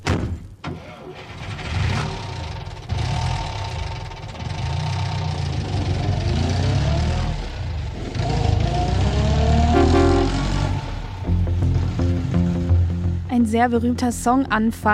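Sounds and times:
car engine turning over: 0:00.6 - 0:13.3
car engine deep rumbling idle: 0:02.2 - 0:08.5, 0:09.6 - 0:13.3
car horn: 0:09.6 - 0:11.2
speech: 0:13.5 - 0:14.9.

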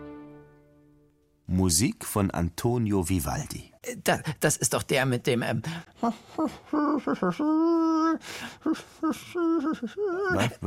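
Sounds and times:
speech: 0:01.5 - 0:10.6
breaths between phrases: 0:05.6 - 0:06.7, 0:08.2 - 0:09.4
person humming a Baroque concerto melody: 0:06.0 - 0:10.5.

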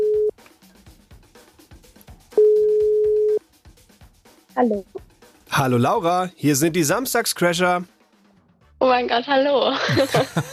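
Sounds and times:
telephone ringing tone of an outgoing international call: 0:00.0 - 0:00.3, 0:02.4 - 0:03.4
speech: 0:04.6 - 0:08.0, 0:08.8 - 0:10.5
laughter: 0:09.7 - 0:10.5.

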